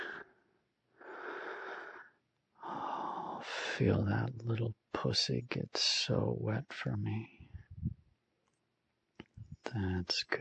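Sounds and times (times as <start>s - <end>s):
soft airy breathing close to the ear: 0.0s - 0.4s, 1.0s - 3.8s
speech: 3.8s - 7.4s, 9.7s - 10.3s.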